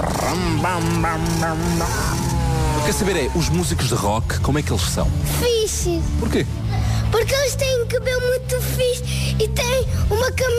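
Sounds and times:
voice imitating a revving motorbike: 0.0s - 3.9s
speech: 0.3s - 2.3s, 2.9s - 10.5s.

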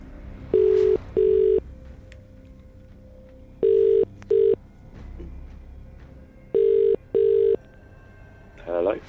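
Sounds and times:
outgoing phone call ringing: 0.6s - 1.6s, 3.6s - 4.6s, 6.6s - 7.6s.

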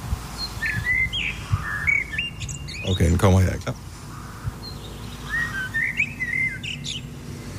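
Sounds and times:
blackbird whistling a phrase mimicking a pop song melody: 0.4s - 3.0s, 4.6s - 7.1s
brighter blackbird chirps: 0.4s - 7.5s
speech: 2.9s - 3.9s.

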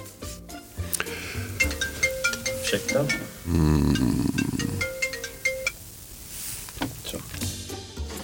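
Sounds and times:
faint movement: 0.5s - 7.4s
mobile phone ringtone with bright electronic tones: 1.1s - 5.8s
speech: 2.7s - 4.4s.

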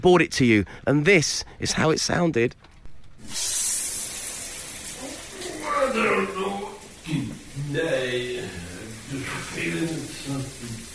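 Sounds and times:
speech: 0.0s - 3.8s, 5.8s - 10.9s
shower water spraying: 3.2s - 10.9s.

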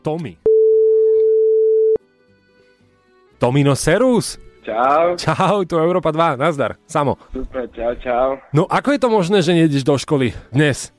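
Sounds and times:
speech: 0.0s - 0.5s, 3.4s - 10.9s
ringback tone of an outgoing telephone call: 0.5s - 2.0s.

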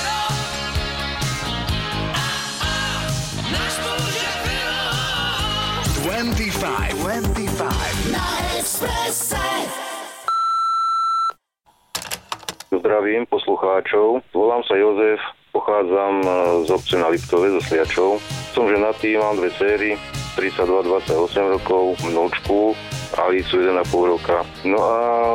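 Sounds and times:
music: 0.0s - 10.2s, 16.2s - 25.3s
speech: 6.2s - 9.8s, 12.9s - 25.3s
answering machine beep: 10.3s - 11.4s.

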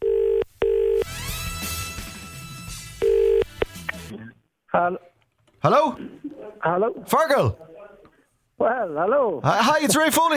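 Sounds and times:
telephone ringback tone on a call: 0.0s - 1.1s, 3.0s - 3.5s
speech: 4.7s - 7.7s, 8.6s - 10.3s.

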